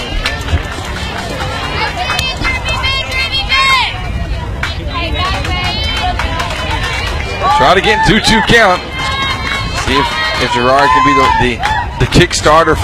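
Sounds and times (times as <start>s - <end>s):
dugout crowd cheering and chanting at softball game: 0.0s - 12.8s
people clapping: 0.0s - 12.8s
people shouting: 1.7s - 4.0s, 4.8s - 12.8s
speech: 7.6s - 8.9s, 9.9s - 12.8s.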